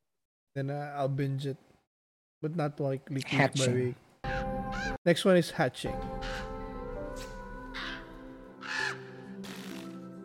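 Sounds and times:
speech: 0:00.6 - 0:01.7, 0:02.4 - 0:06.5
crow cawing: 0:04.3 - 0:05.0, 0:06.2 - 0:06.7, 0:07.6 - 0:09.9.

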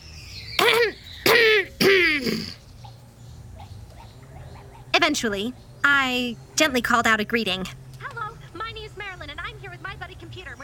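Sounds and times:
throaty rasping coughs: 0:00.6 - 0:02.6
speech: 0:05.1 - 0:07.8.

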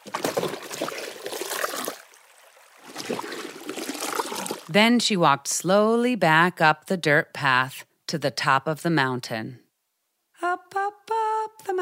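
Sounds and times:
wooden buckets plunged into river water: 0:00.0 - 0:04.7
speech: 0:04.7 - 0:09.6.

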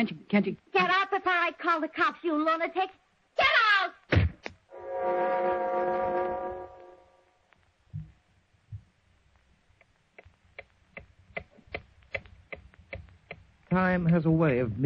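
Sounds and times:
speech: 0:00.0 - 0:03.0, 0:05.0 - 0:06.0, 0:13.7 - 0:14.8
long deep horn-like tone: 0:04.7 - 0:07.5
clock ticking: 0:09.8 - 0:14.2.

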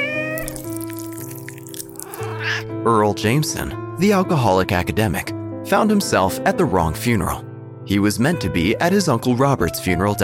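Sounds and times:
cat meowing: 0:00.0 - 0:00.9, 0:01.9 - 0:02.7
speech: 0:02.6 - 0:10.2.

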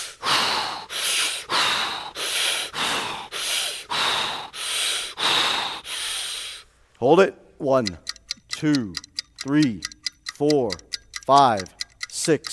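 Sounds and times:
deep breathing during a guided breathing exercise: 0:00.0 - 0:06.8
speech: 0:07.0 - 0:12.5.

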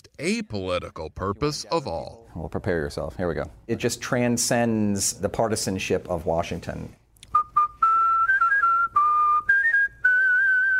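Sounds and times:
speech: 0:00.2 - 0:07.0
person whistling a melody: 0:07.3 - 0:10.7.

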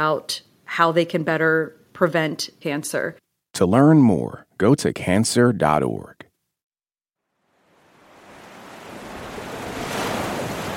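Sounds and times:
speech: 0:00.0 - 0:06.2
Atlantic Ocean waves breaking on the shore at San Luis Senegal: 0:07.4 - 0:10.7.

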